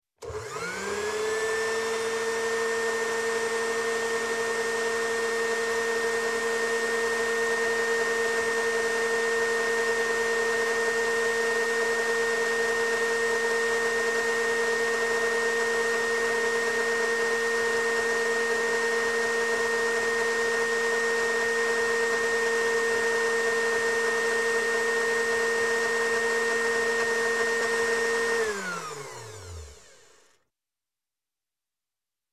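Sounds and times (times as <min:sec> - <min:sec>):
empty electric blender starting, running and stopping: 0:00.2 - 0:30.4.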